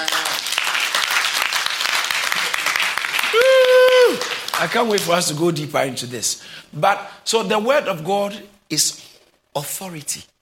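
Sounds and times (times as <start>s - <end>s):
congregation applauding: 0.0s - 5.1s
speech: 4.6s - 9.0s, 9.6s - 10.3s.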